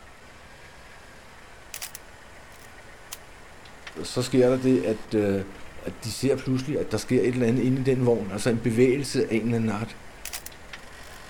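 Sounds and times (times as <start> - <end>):
camera shutter clicks: 1.8 - 3.2, 10.3 - 11.2
speech: 4.0 - 10.0.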